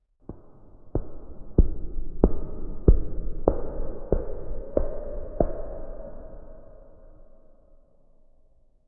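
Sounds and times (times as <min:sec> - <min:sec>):
slow echoing footsteps: 0:00.2 - 0:06.1.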